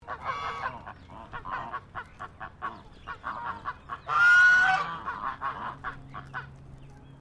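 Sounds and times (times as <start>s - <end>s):
Chinese goose honking: 0.0s - 6.5s.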